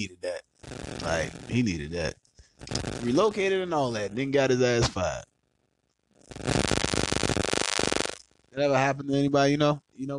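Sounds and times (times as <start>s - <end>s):
speech: 0.0s - 0.3s, 1.0s - 2.2s, 2.8s - 5.3s, 8.6s - 10.1s
mobile phone interference buzz picked up by a microphone: 0.6s - 1.7s, 2.6s - 4.2s, 6.2s - 8.2s.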